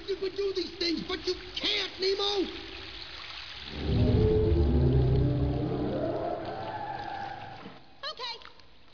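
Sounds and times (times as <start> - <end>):
speech: 0.1 - 2.7
murky underwater rumble: 3.7 - 7.5
deep drawn-out whale call underwater: 3.7 - 7.9.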